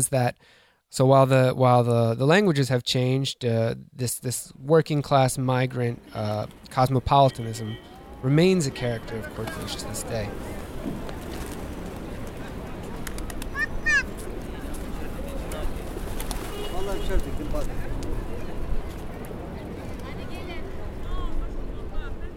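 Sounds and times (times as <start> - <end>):
speech: 0.0 - 11.1, 17.1 - 17.8
pigeon wings fluttering in Taksim Square in Istanbul Turkey: 9.4 - 20.2.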